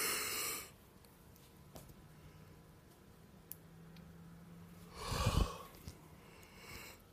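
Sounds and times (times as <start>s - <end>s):
person yawning: 5.0s - 5.7s.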